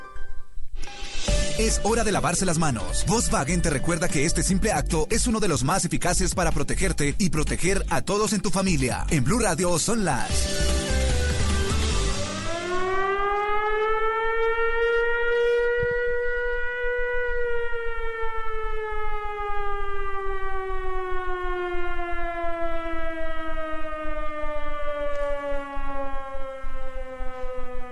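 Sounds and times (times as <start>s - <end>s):
siren wailing on a radio broadcast in Bogotá: 1.3s - 5.8s, 9.7s - 27.8s
speech: 1.6s - 10.7s.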